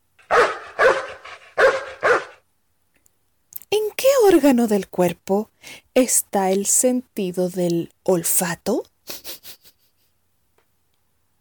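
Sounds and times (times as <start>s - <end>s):
dog barking: 0.2s - 2.4s
speech: 4.3s - 9.5s.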